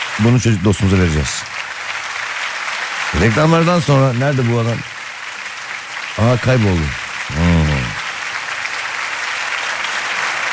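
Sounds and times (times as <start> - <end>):
large audience applauding: 0.0 - 10.5
speech: 0.2 - 1.5, 3.1 - 4.9, 6.2 - 7.5
brief voiced sound: 7.3 - 8.0.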